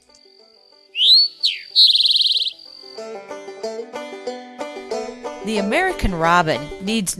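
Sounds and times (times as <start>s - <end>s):
towhee's drink your tea call: 1.0s - 2.9s
speech: 5.5s - 7.1s.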